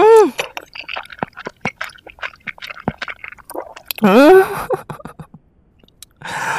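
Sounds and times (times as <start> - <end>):
person chewing and slurping instant ramen noodles: 0.4 - 4.0.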